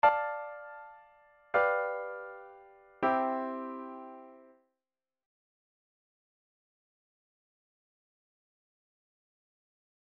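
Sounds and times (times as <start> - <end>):
C major ii V I chord progression: 1.6 - 4.5.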